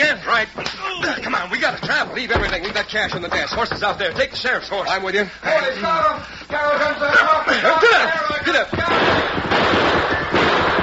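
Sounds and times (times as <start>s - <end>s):
speech: 0.4s - 10.1s
gunshots in a western shootout during a getaway: 8.7s - 10.8s.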